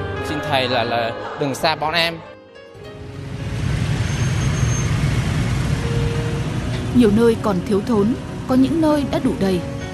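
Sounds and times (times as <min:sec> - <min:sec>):
speech: 0:00.3 - 0:02.3, 0:06.9 - 0:09.7
dense street traffic of cars, buses and trucks: 0:02.8 - 0:09.9.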